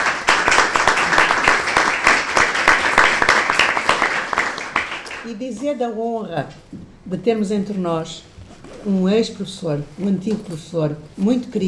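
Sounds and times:
audience applause at a university conference celebrating social work graduates: 0.0s - 5.2s
speech: 5.3s - 11.6s.

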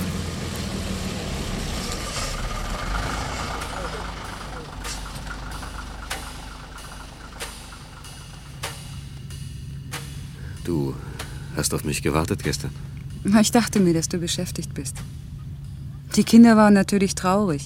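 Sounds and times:
bus engine idling: 0.0s - 17.6s
sharp clicks: 4.8s - 9.3s
speech: 10.7s - 15.2s, 16.2s - 17.6s.

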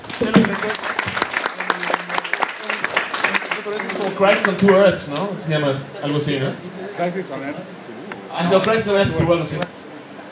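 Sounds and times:
audience applause at a comics discussion event: 0.0s - 5.0s
voices over clapping: 0.0s - 5.3s
speech: 0.2s - 1.0s, 3.6s - 9.9s.

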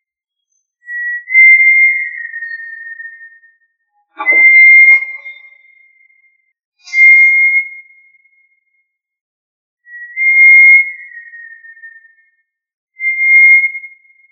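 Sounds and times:
tinamou calling in steady clear whistled notes: 0.9s - 3.4s, 4.2s - 5.8s, 6.9s - 7.6s, 9.9s - 12.2s.

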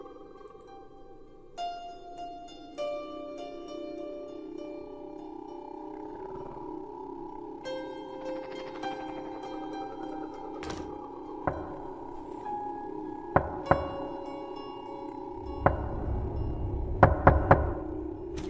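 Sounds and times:
low steady droning background: 0.0s - 18.4s
someone knocking on a door outside: 13.4s - 14.1s.

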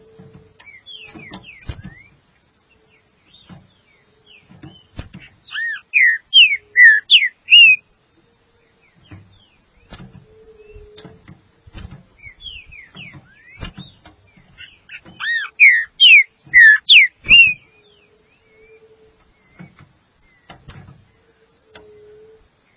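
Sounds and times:
green-winged saltator loud slurred whistles: 5.5s - 7.8s, 15.2s - 17.6s.

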